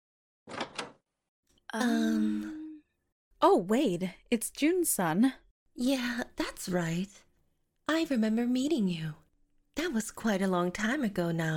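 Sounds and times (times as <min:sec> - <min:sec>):
door creaking open: 0:00.5 - 0:01.0
speech: 0:01.7 - 0:02.5, 0:03.4 - 0:07.2, 0:07.9 - 0:09.2, 0:09.8 - 0:11.5.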